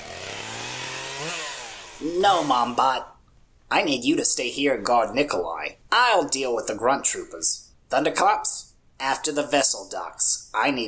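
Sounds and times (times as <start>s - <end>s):
chainsaw revving: 0.0s - 2.8s
speech: 2.0s - 3.1s, 3.7s - 10.8s.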